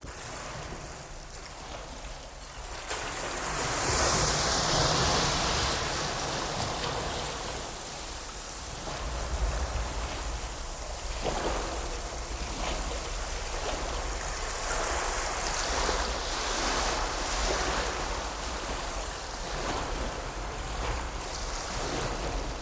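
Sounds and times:
water movement of bow wash: 0:00.0 - 0:22.5.

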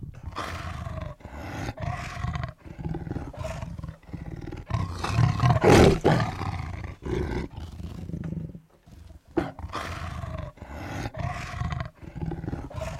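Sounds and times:
tiger roaring: 0:00.2 - 0:12.9.

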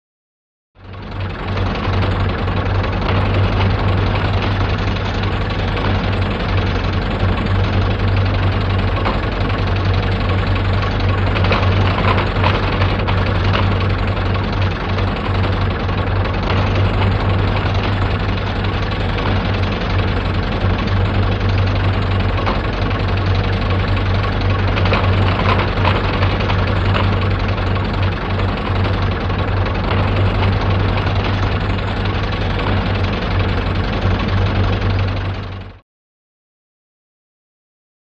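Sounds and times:
heavy diamond drill drilling: 0:01.0 - 0:35.8.

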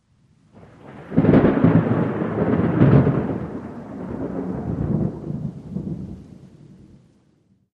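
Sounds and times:
thunder crack rolling: 0:00.6 - 0:06.2.

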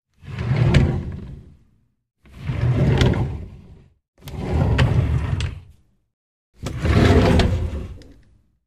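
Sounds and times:
wooden drawer opening and closing: 0:00.2 - 0:01.6, 0:02.2 - 0:05.7, 0:06.6 - 0:08.2.

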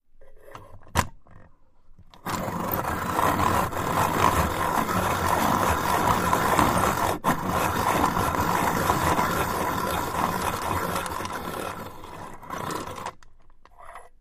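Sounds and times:
circular grinders grinding metal: 0:02.2 - 0:13.2.

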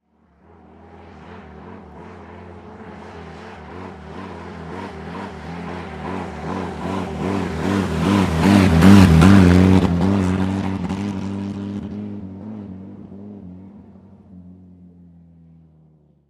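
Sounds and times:
army jeep engine revving erratically: 0:03.6 - 0:11.6.

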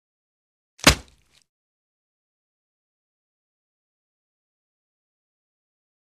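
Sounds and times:
tomahawk single impact: 0:00.8 - 0:01.4.

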